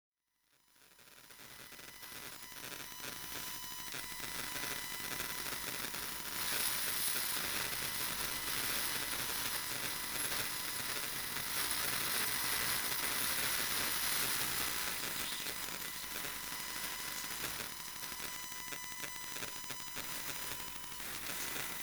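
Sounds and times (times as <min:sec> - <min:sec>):
smartphone emissions: 0:01.4 - 0:21.8.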